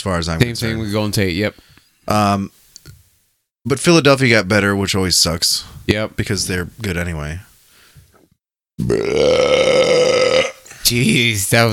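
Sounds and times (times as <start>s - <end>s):
speech: 0.0s - 2.6s, 3.6s - 7.5s, 8.8s - 10.0s, 10.9s - 11.7s
loud drawn-out burp: 8.8s - 10.6s.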